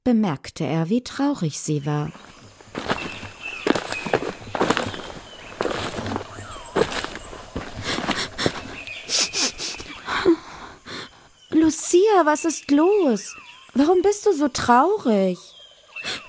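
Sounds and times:
speech: 0.1s - 2.9s, 12.0s - 15.6s
heavy footsteps stomping across meadow grass: 2.1s - 9.0s.

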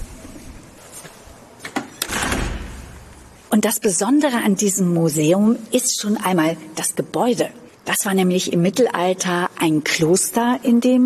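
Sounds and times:
heavy museum door creaking and scraping open: 1.7s - 3.4s
heavy museum door thuds: 2.0s - 3.2s
speech: 3.6s - 11.0s.

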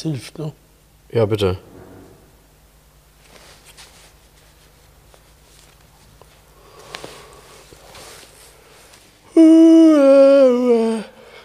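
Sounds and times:
speech: 0.0s - 1.7s
rustling: 1.6s - 9.2s
person yawning: 9.3s - 11.4s.

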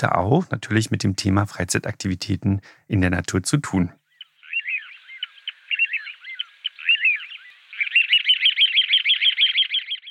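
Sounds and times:
speech: 0.0s - 4.0s
small songbird singing: 3.2s - 10.0s.

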